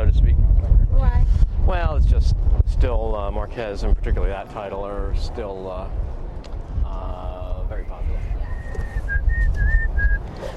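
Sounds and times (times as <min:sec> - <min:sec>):
low rumbling background: 0:00.0 - 0:10.5
speech: 0:02.3 - 0:06.1
person whistling a short melodic tune: 0:08.5 - 0:10.4.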